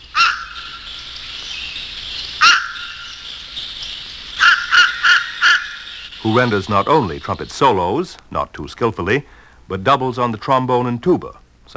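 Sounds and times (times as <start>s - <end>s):
fish crow cawing: 0.0s - 6.6s
soft hiss: 0.0s - 11.7s
speech: 6.2s - 11.7s.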